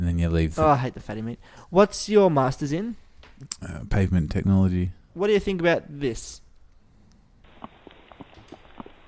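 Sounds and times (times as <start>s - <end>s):
steady noise: 0.0s - 9.0s
speech: 0.2s - 6.4s
horse hooves walking on asphalt: 7.5s - 9.0s.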